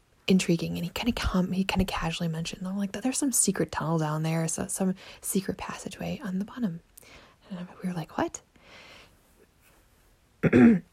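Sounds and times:
speech: 0:00.3 - 0:08.8, 0:10.4 - 0:10.9
person with a sore throat after eating ice cream clearing throat: 0:10.4 - 0:10.9.

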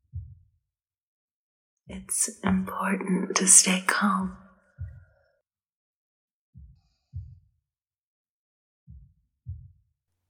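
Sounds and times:
soft slow heartbeat in lub-dub pulses: 0:00.0 - 0:00.4, 0:01.9 - 0:05.3, 0:06.6 - 0:07.6, 0:08.9 - 0:09.8
speech: 0:01.9 - 0:04.4.

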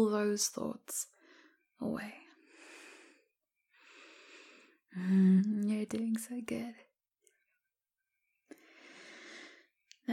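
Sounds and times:
speech: 0:00.0 - 0:01.1, 0:01.8 - 0:02.2, 0:04.9 - 0:06.9
slow deep breathing during a relaxation exercise: 0:02.4 - 0:05.2, 0:08.5 - 0:09.8.

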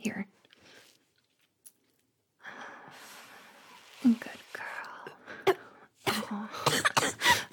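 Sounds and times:
harsh raspy coughing after inhaling smoke: 0:06.1 - 0:07.5.

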